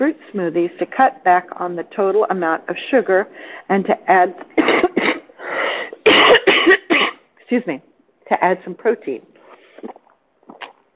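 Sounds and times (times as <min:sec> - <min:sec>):
speech: 0:00.0 - 0:05.1, 0:07.5 - 0:10.0
harsh coughing from a tickle in the throat: 0:04.6 - 0:05.3, 0:05.9 - 0:07.2.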